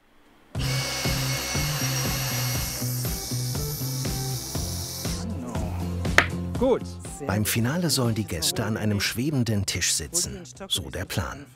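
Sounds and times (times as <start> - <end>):
saw cutting through wood: 0.6 - 5.3
speech: 6.6 - 11.5.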